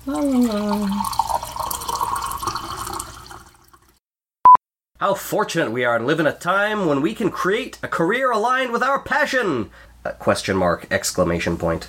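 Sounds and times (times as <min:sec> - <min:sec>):
speech: 0:00.0 - 0:00.9, 0:05.0 - 0:11.8
tea pouring into a cup: 0:00.0 - 0:04.0.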